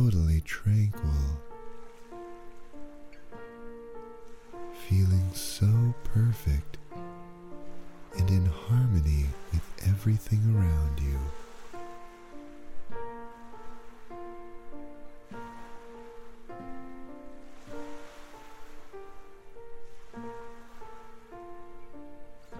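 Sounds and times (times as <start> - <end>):
soft ocean waves rippling up the shoreline: 0.0 - 22.5
steady sustained musical chords: 4.7 - 11.4
speech: 10.0 - 11.4.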